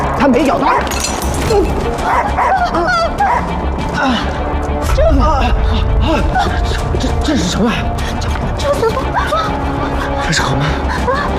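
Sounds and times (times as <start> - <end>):
speech: 0.3 - 11.3
dog barking and whimpering: 2.0 - 3.6.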